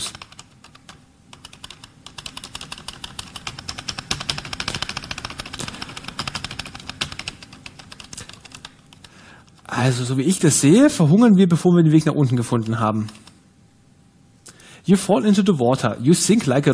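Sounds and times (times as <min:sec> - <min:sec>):
rapid typing on a computer keyboard for a text adventure game: 0:00.0 - 0:09.7, 0:12.3 - 0:13.4
speech: 0:09.8 - 0:13.2, 0:14.9 - 0:16.7.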